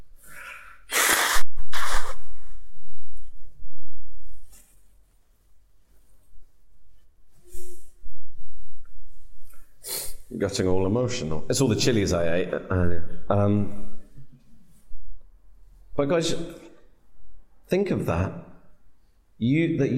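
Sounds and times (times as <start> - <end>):
nose blowing: 0.2 - 2.9, 9.8 - 10.3
speech: 10.4 - 14.0, 16.0 - 16.6, 17.7 - 18.4, 19.4 - 19.9.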